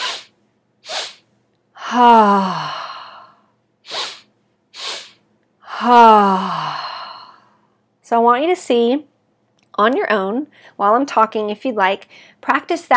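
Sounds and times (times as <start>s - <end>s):
long deep voiced exhale through an open throat with a low vibration: 0.0s - 1.2s, 1.8s - 7.6s
person taking quick sharp breaths in a breathing exercise: 0.0s - 1.3s, 2.7s - 5.2s
speech: 1.9s - 2.8s, 5.8s - 6.8s, 8.1s - 9.1s, 9.8s - 12.9s.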